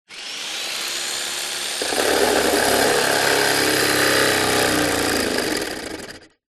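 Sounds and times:
industrial electric power saw blade cutting wood: 0.0s - 6.4s.

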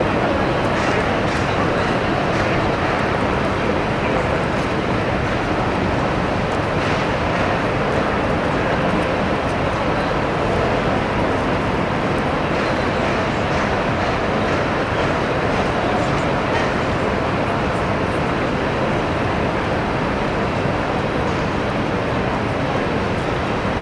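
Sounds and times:
urban city ambience on Broad Street in NYC: 0.0s - 23.7s.

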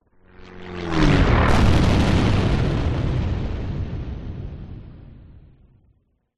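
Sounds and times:
light propeller plane crash: 0.7s - 5.9s
exterior explosion of a light propeller plane: 1.0s - 6.0s.

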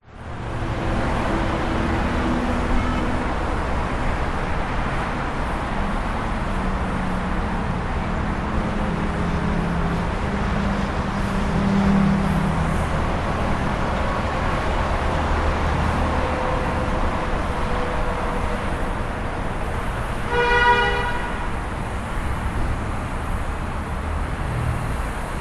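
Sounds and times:
interstate highway traffic in Las Vegas: 0.0s - 25.3s.

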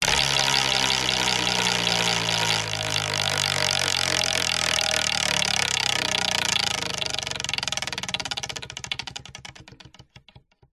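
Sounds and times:
wooden leisure wheel of fortune spinning fast: 0.0s - 10.7s.

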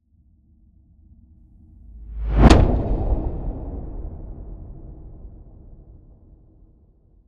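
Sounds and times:
swell to impact: 2.0s - 6.1s.

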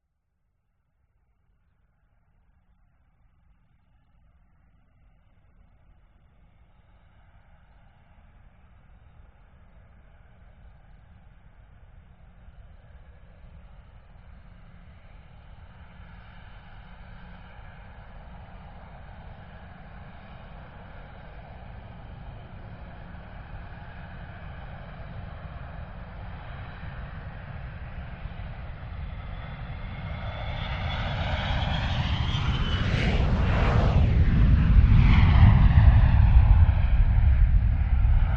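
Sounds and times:
private jet taking off: 12.6s - 38.3s.

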